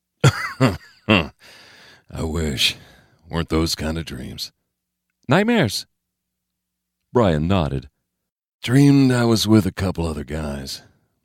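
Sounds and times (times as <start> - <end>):
harsh raspy coughing: 0.2 - 1.5
speech: 0.6 - 1.3, 2.3 - 4.6, 5.3 - 5.9, 7.1 - 7.9, 8.6 - 10.9.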